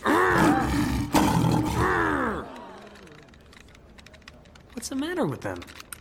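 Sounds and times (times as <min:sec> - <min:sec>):
zoo lion roaring: 0:00.0 - 0:02.5
speech: 0:04.9 - 0:05.8.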